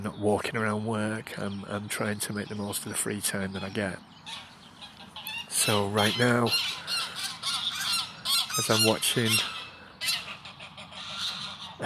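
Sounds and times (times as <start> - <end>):
outdoor ambience by a pond: 0.0 - 11.8
quiet bird chatter by a pond: 0.0 - 11.8
speech: 0.1 - 4.5, 5.6 - 6.9, 8.6 - 9.6
geese honking beside a pond: 2.0 - 11.8.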